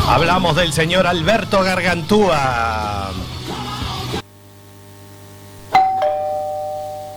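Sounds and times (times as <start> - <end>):
speech: 0.2 - 3.2
doorbell two-note ding-dong chime: 5.7 - 7.1.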